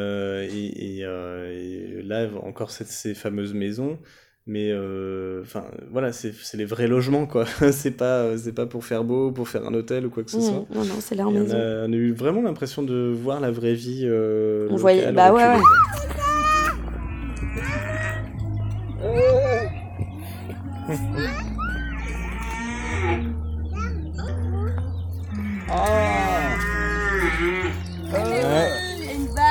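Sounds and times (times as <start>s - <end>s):
speech: 0.0s - 16.2s
pigs grunting and squealing: 15.6s - 20.1s, 20.9s - 24.3s, 25.3s - 29.2s
laughter: 18.9s - 22.0s, 25.8s - 29.4s.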